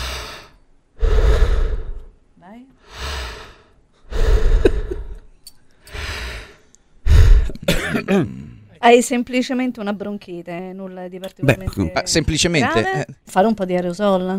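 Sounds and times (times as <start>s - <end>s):
deep breaths during chest examination: 0.0s - 2.2s, 2.8s - 7.6s
speech: 8.1s - 14.3s.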